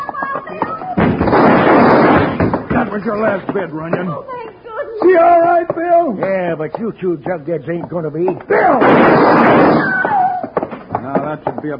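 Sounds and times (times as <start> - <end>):
sustained dense noise: 0.8 - 11.7
gunshot in a Western shootout with bank robbers: 1.0 - 2.9, 8.6 - 10.1
speech: 3.0 - 4.4, 5.0 - 10.1, 11.3 - 11.7.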